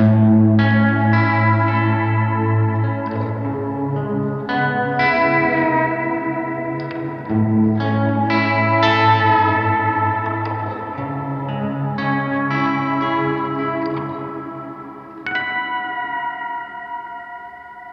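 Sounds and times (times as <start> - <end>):
moody ambient guitar through modulation pedal effects: 0.0 - 17.9.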